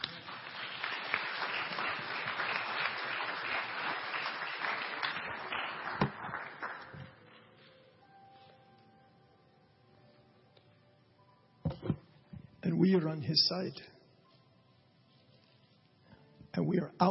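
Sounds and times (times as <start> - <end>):
audience applause: 0.0 - 7.2
speech: 12.8 - 13.9, 16.9 - 17.1.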